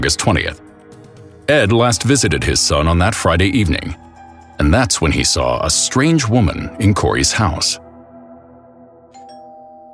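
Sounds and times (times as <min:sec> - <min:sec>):
speech: 0:00.0 - 0:00.7, 0:01.5 - 0:07.8
doorbell two-tone chime: 0:09.1 - 0:09.9.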